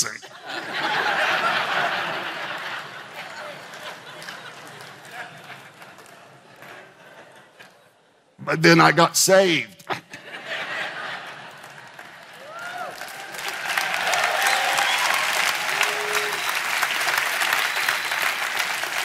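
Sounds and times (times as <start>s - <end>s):
audience clapping: 0.0s - 7.8s, 10.8s - 19.0s
laughter: 0.0s - 8.0s, 9.9s - 12.4s
speech: 8.5s - 9.8s
cheers and whoops: 12.4s - 18.6s.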